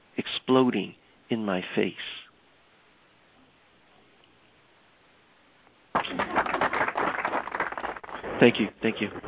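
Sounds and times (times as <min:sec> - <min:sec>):
speech: 0:00.5 - 0:02.2, 0:08.4 - 0:09.2
canned burst of applause: 0:05.9 - 0:09.2.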